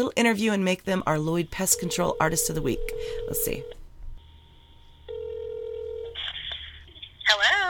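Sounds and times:
speech: 0.0s - 3.8s
steady phone dial tone: 1.6s - 3.8s, 5.1s - 6.3s.

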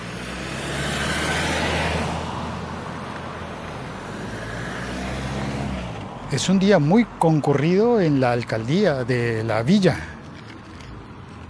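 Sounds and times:
steady low traffic rumble: 0.0s - 11.4s
two cars passing on a street: 0.0s - 11.4s
speech: 6.3s - 10.1s.

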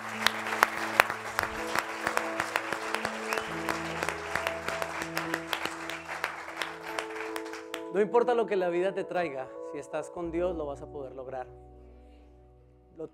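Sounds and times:
crowd applause: 0.0s - 7.9s
sustained keyboard chords: 0.0s - 13.1s
speech: 8.0s - 11.7s, 13.0s - 13.1s.

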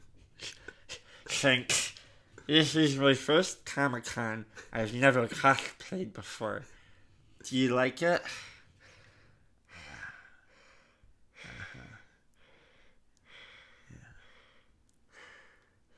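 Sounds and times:
heavy labored rasping breathing: 0.2s - 2.6s, 8.2s - 15.9s
speech: 1.4s - 1.8s, 2.5s - 6.8s, 7.4s - 8.4s.

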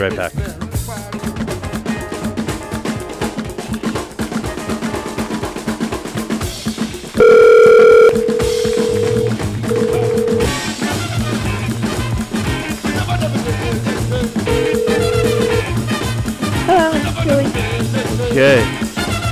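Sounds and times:
speech: 0.0s - 1.4s, 18.3s - 18.8s
busy rhythmic music: 0.0s - 19.3s
telephone dial tone while placing a call: 7.2s - 10.5s, 14.5s - 15.8s.

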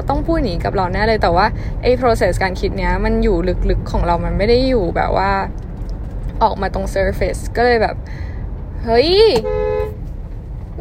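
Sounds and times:
speech: 0.0s - 5.6s, 6.4s - 9.6s
car horn blast in traffic: 9.2s - 10.1s.

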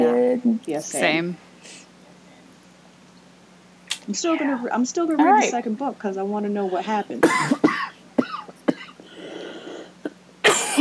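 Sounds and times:
speech: 0.4s - 1.8s, 4.1s - 7.6s
person coughing: 7.2s - 10.7s.

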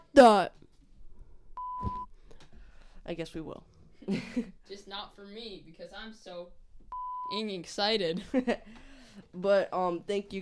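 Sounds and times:
speech: 0.2s - 0.6s, 3.1s - 10.4s
censor bleep over profanity: 1.6s - 2.1s, 6.9s - 7.4s.

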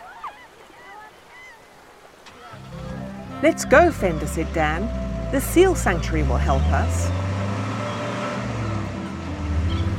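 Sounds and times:
road noise: 2.2s - 9.9s
car engine rumble driving off and racing up a lane: 2.3s - 9.9s
speech: 3.4s - 7.2s.

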